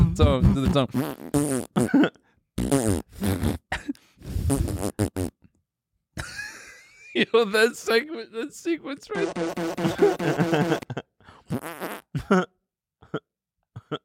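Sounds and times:
person imitating fart noises with their voice: 0.0s - 5.5s, 9.2s - 10.9s, 11.5s - 12.2s
speech: 0.2s - 2.2s, 7.3s - 11.0s
laughter: 6.2s - 8.1s, 9.0s - 11.1s.

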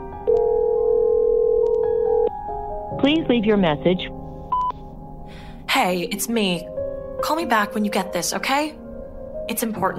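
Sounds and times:
phone call ringback tone: 0.3s - 2.3s
speech: 3.0s - 4.2s, 5.3s - 8.8s, 9.5s - 9.9s.

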